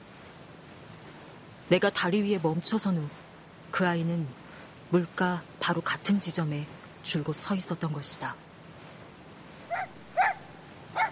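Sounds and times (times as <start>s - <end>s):
speech: 1.7s - 3.2s, 3.8s - 8.5s
small white mixed-breed dog barking while leaping at a water wheel: 9.7s - 11.1s.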